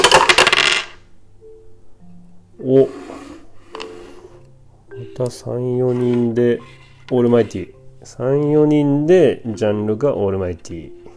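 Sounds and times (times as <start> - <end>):
two dice clattering down through a dice tower: 0.0 - 1.0
speech: 2.7 - 3.0, 5.2 - 11.0.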